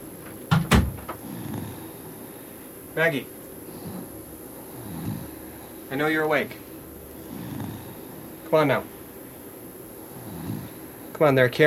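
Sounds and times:
knocking on a wooden door: 0:00.5 - 0:01.2
speech: 0:03.0 - 0:03.4, 0:05.9 - 0:06.6, 0:08.5 - 0:09.0, 0:11.2 - 0:11.6.

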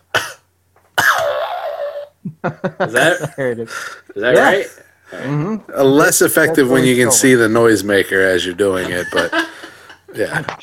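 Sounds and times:
deliberate forced raspy cough: 0:00.1 - 0:01.4
laughter: 0:02.2 - 0:03.7, 0:08.6 - 0:10.2
speech: 0:02.4 - 0:09.5, 0:10.1 - 0:10.6.

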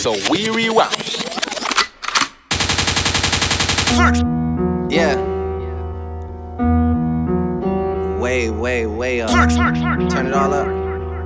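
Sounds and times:
speech: 0:00.0 - 0:01.2, 0:03.9 - 0:05.3, 0:08.3 - 0:10.8
sharp gunshot blasts: 0:02.5 - 0:04.2
music: 0:03.9 - 0:11.2.

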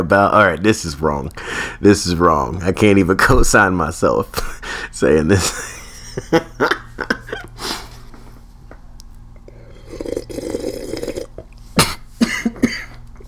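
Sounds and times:
speech: 0:00.0 - 0:06.8
laughter: 0:05.3 - 0:07.6
person coughing: 0:11.8 - 0:13.0.

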